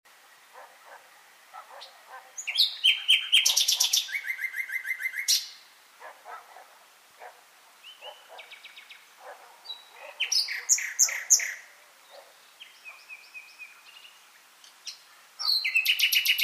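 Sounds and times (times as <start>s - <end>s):
Common nightingale Luscinia megarhynchos singing varied phrases: 1.7s - 5.7s, 7.8s - 16.4s.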